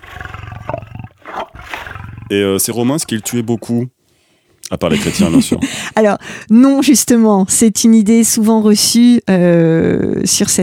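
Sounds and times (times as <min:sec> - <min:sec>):
lion roaring: 0:00.0 - 0:03.8
speech: 0:02.3 - 0:04.0, 0:04.7 - 0:10.6
laughter: 0:04.8 - 0:06.1.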